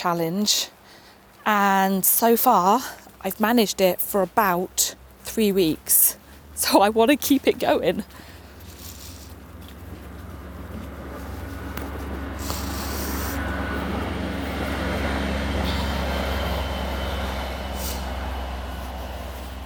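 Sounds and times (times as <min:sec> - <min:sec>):
speech: 0:00.0 - 0:00.8, 0:01.4 - 0:08.3
train passing: 0:06.1 - 0:19.6.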